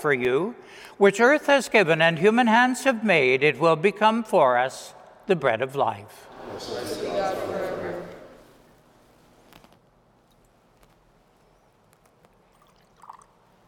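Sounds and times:
speech: 0:00.0 - 0:07.5
water poured into a chalice of wine: 0:12.3 - 0:13.6.

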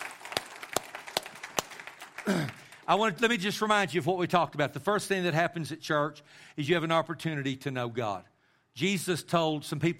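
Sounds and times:
church audience applauding: 0:00.0 - 0:03.2
speech: 0:02.3 - 0:09.9.

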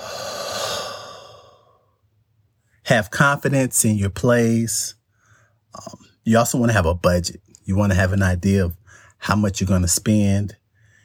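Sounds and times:
soft unvoiced long breathy breath: 0:00.0 - 0:02.1, 0:05.1 - 0:05.7, 0:08.8 - 0:09.2, 0:10.7 - 0:11.0
speech: 0:02.9 - 0:05.0, 0:05.7 - 0:10.6.

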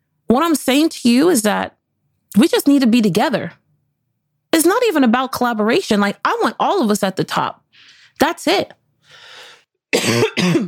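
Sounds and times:
speech: 0:00.3 - 0:03.6, 0:04.5 - 0:09.2, 0:09.9 - 0:10.6
soft breathy intake: 0:09.0 - 0:09.7
loud harsh coughs: 0:09.9 - 0:10.6.

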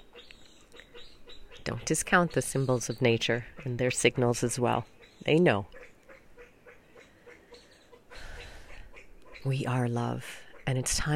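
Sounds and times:
female pheasant chattering loudly outdoors: 0:00.0 - 0:11.1
speech: 0:01.6 - 0:05.8, 0:09.4 - 0:11.1.

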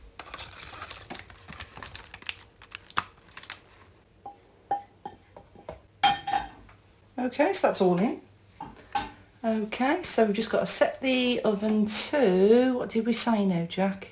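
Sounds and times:
pudding mixture poured into a loaf tin lined with greaseproof paper: 0:00.0 - 0:03.9
speech: 0:07.2 - 0:08.3, 0:09.4 - 0:14.1.

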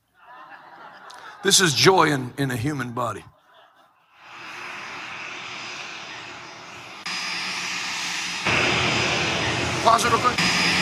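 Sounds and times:
laughter: 0:00.0 - 0:04.2
speech: 0:01.4 - 0:03.4, 0:09.8 - 0:10.5
jet airplane engine roaring and spooling up: 0:04.2 - 0:10.8.

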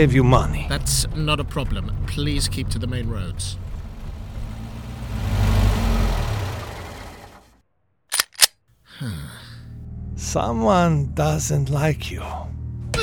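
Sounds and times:
speech: 0:00.0 - 0:03.7, 0:09.0 - 0:09.4, 0:10.2 - 0:12.6
car engine rumbling during taxi ride: 0:00.0 - 0:07.6.

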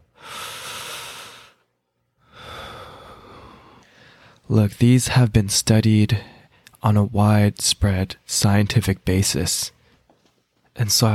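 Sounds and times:
deep slow breath: 0:00.0 - 0:04.4
speech: 0:04.5 - 0:09.8, 0:10.8 - 0:11.1.

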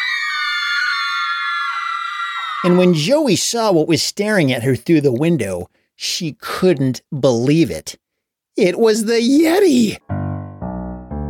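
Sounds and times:
teacher and class of children screaming in a classroom: 0:00.0 - 0:03.0
speech: 0:02.6 - 0:08.0, 0:08.6 - 0:10.1.

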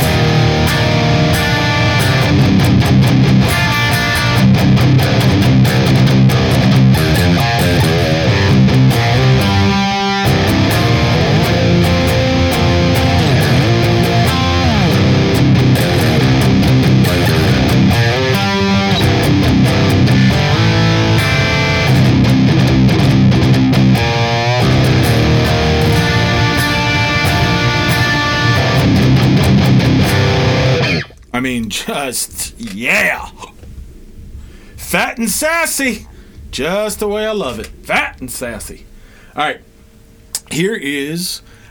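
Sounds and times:
heavy distorted electric guitar riff through a Boss IR-200 amp simulator: 0:00.0 - 0:31.3
speech: 0:34.9 - 0:39.7, 0:40.5 - 0:41.5.

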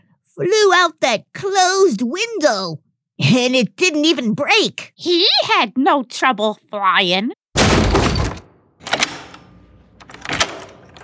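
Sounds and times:
speech: 0:00.4 - 0:07.4
door slamming shut: 0:07.6 - 0:09.5, 0:10.1 - 0:11.0
latch or lock clicking: 0:08.8 - 0:11.0.

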